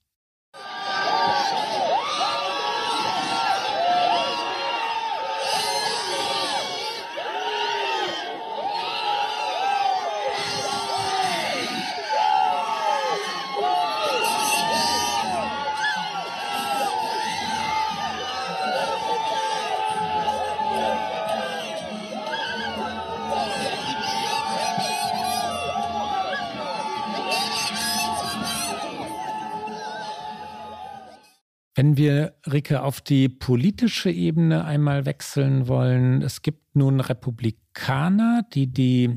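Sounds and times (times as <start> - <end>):
large outdoor crowd cheering and whooping outside the Supreme Court: 0.6 - 31.4
overlapping shouts and excited high-pitched voices: 0.6 - 31.4
speech: 32.0 - 39.1.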